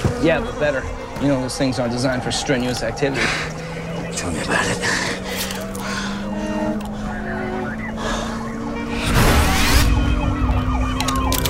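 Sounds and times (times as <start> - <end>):
ambulance siren wailing: 0.0 - 11.4
road noise: 0.0 - 11.4
steady engine drone: 0.0 - 11.4
speech: 0.2 - 3.5, 4.2 - 5.0
loud rushing surge: 8.9 - 10.0.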